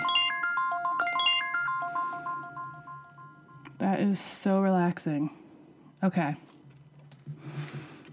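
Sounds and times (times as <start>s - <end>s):
melodic electronic timer alarm tune: 0.0s - 4.0s
speech: 3.9s - 5.4s, 6.0s - 6.5s.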